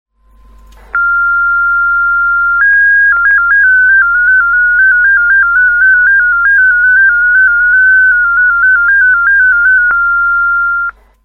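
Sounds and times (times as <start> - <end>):
MFSK-8 digital radio mode signal: 1.0 - 11.0.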